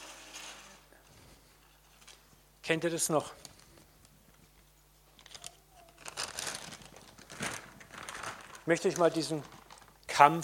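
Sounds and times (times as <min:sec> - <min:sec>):
speech: 0:02.7 - 0:03.4, 0:08.7 - 0:09.6, 0:10.2 - 0:10.4
plastic bag crinkling as it is handled: 0:05.1 - 0:10.2.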